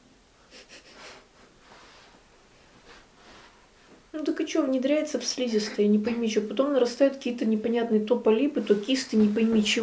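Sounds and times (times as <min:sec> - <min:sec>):
quick nasal sniffs: 0:00.5 - 0:02.2
speech: 0:04.2 - 0:09.8.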